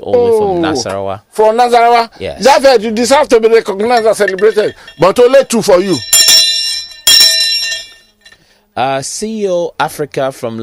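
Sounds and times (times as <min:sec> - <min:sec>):
speech: 0:00.0 - 0:06.2, 0:08.8 - 0:10.6
hand bell ringing: 0:03.9 - 0:08.4.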